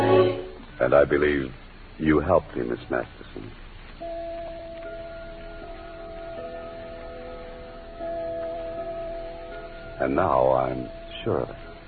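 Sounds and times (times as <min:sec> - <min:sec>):
faint hum: 0:00.0 - 0:11.8
speech: 0:00.8 - 0:03.6, 0:10.0 - 0:11.6
clock striking a chime: 0:04.0 - 0:11.8.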